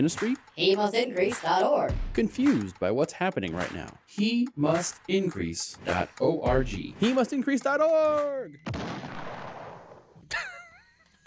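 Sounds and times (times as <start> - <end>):
speech: 0.0 - 9.2
cartoonish cannon or bazooka blast: 8.6 - 10.1.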